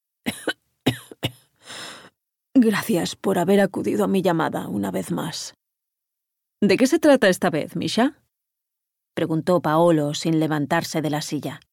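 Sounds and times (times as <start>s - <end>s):
harsh hoarse coughing fit: 0.3s - 1.5s
speech: 2.6s - 5.6s, 6.6s - 8.2s, 9.2s - 11.7s.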